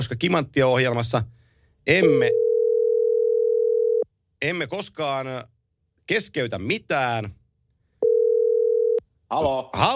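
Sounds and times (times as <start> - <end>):
speech: 0.0 - 2.4, 4.4 - 5.5, 6.1 - 7.4, 9.3 - 9.9
telephone dial tone after a dropped live call line: 2.3 - 4.0, 8.0 - 9.0.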